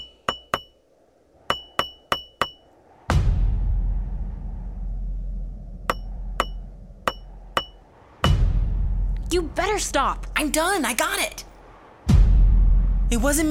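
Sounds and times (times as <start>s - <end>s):
hammer chipping at rock to extract a lizard fossil: 0.0s - 0.8s, 1.5s - 2.6s
deep loud rumble of the ground shaking: 2.7s - 13.4s
speech: 9.3s - 11.4s, 13.1s - 13.4s.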